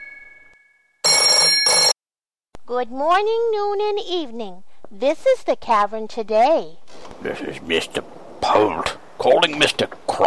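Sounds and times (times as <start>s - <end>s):
telephone ringing in electric bursts: 0.0s - 2.0s
speech: 2.7s - 10.2s.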